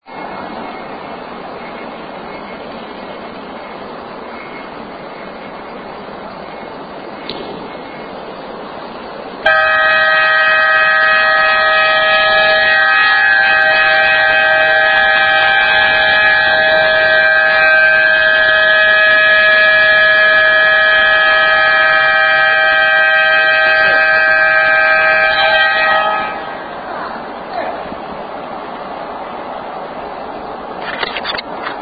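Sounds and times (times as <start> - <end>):
red alert horn pattern: 9.5 - 26.6.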